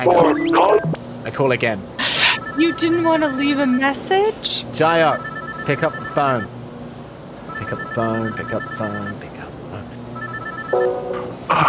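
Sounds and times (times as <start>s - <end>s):
speech: 0.0s - 2.0s, 2.6s - 6.6s, 7.6s - 9.2s
telephone ringing with warbling electronic tone: 2.2s - 4.2s, 5.0s - 6.5s, 7.5s - 9.2s, 10.2s - 11.0s.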